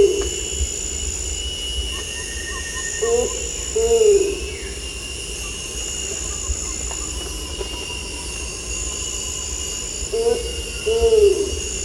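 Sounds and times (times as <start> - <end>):
continuous shrill insect chorus: 0.0 - 11.8
Bornean ground cuckoo doubled low hoots at Danum: 2.0 - 4.8, 10.1 - 11.8.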